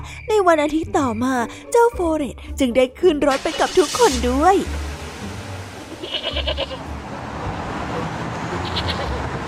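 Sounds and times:
speech: 0:00.2 - 0:04.9, 0:06.2 - 0:07.0
goat bleating while walked into a restaurant: 0:05.8 - 0:06.9, 0:08.6 - 0:09.2.

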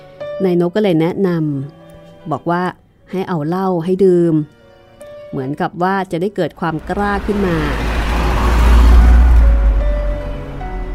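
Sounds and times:
speech: 0:00.4 - 0:04.6, 0:05.3 - 0:07.9
car engine rumble while being driven: 0:06.7 - 0:10.9.

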